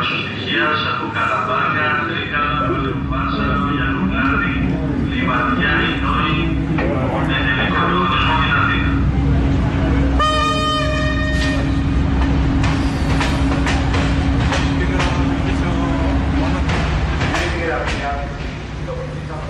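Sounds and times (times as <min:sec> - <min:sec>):
passenger train rolling along the rails: 0:00.0 - 0:19.4
brief horn-like tone: 0:10.2 - 0:11.8.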